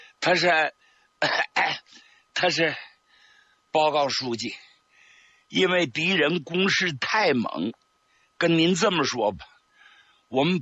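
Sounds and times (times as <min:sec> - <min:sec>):
speech: 0:00.2 - 0:02.9, 0:03.7 - 0:04.7, 0:05.5 - 0:07.8, 0:08.4 - 0:09.5, 0:10.3 - 0:10.6
voice imitating coughing: 0:01.2 - 0:01.9.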